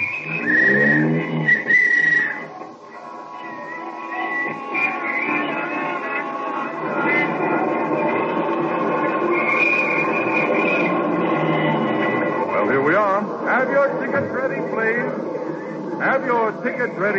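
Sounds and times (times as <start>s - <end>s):
shrill whistle or horn-like tone: 0.0s - 13.2s
taxi cab engine rumble in city traffic: 0.0s - 17.0s
busy street traffic at night: 0.0s - 17.1s
road noise: 0.0s - 17.1s.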